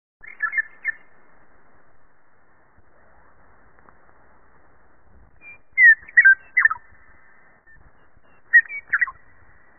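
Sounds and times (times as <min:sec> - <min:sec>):
bird calls of whistled slurred notes: 0:00.2 - 0:01.2, 0:05.4 - 0:09.7
faint low noise: 0:00.2 - 0:09.7.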